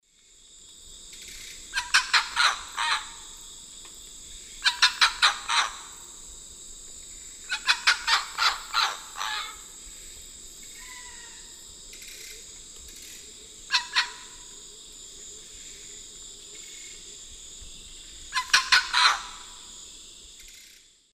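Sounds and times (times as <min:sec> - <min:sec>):
Ibycter americanus calls in the Eastern Lowlands: 0:01.7 - 0:03.4, 0:04.6 - 0:06.1, 0:07.4 - 0:09.9, 0:13.1 - 0:14.6, 0:18.3 - 0:19.7.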